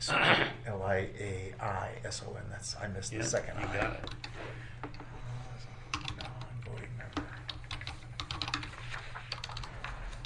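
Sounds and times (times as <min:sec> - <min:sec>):
low hum: 0:00.0 - 0:10.2
speech: 0:01.0 - 0:05.1
typing on a sticky computer keyboard: 0:04.0 - 0:05.0, 0:05.9 - 0:10.2.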